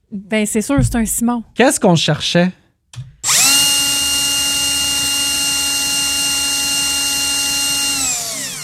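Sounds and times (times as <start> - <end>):
speech: 0.1 - 3.0
power drill running: 3.2 - 8.6.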